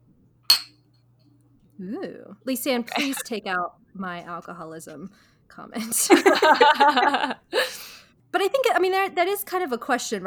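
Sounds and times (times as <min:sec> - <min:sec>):
speech: 0:01.8 - 0:10.2
two beer glasses clinking in a toast: 0:02.9 - 0:03.2
laughter: 0:02.9 - 0:03.3, 0:05.8 - 0:07.9.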